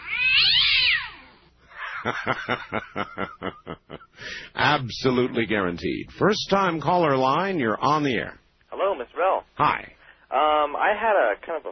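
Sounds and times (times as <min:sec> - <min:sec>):
cat in great distress yowling: 0:00.0 - 0:01.4
laughter: 0:01.8 - 0:04.2
speech: 0:02.0 - 0:11.6.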